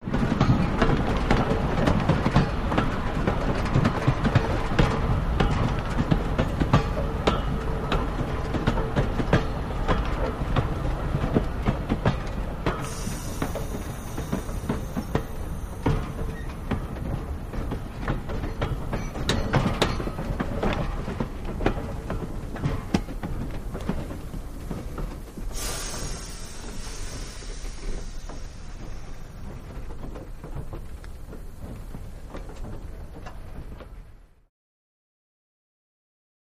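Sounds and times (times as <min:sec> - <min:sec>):
steam train stopping: 0:00.1 - 0:34.2.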